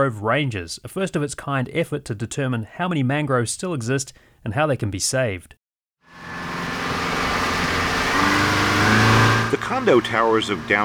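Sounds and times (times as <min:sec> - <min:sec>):
speech: 0:00.0 - 0:05.6, 0:09.5 - 0:10.8
motorboat engine heading north across a bay: 0:06.1 - 0:10.8.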